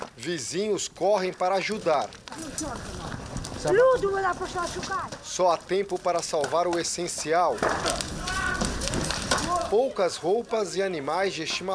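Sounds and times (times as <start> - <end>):
burning building crackling and roaring: 0.0 - 11.7
speech: 0.2 - 8.3, 9.7 - 11.7
sharp pops from a burning building: 1.3 - 9.8.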